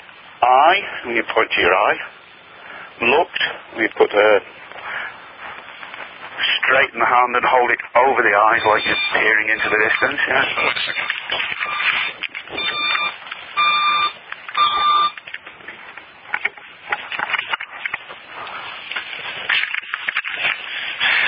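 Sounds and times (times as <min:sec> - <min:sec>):
speech: 0:00.6 - 0:02.2, 0:03.0 - 0:04.7, 0:06.4 - 0:12.6
rustling: 0:04.5 - 0:06.8, 0:08.7 - 0:21.2
electronic alarm beeping: 0:08.5 - 0:15.2.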